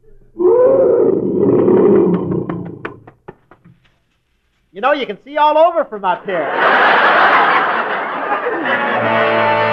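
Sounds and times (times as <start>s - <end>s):
lion roaring: 0.4s - 3.0s
speech: 4.8s - 7.2s
laughter: 6.2s - 9.6s.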